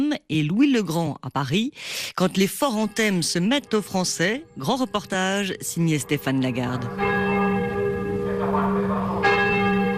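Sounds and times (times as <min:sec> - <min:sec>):
speech: 0:00.3 - 0:07.3
cathedral bells ringing in Hanoi Vietnam: 0:02.3 - 0:09.9.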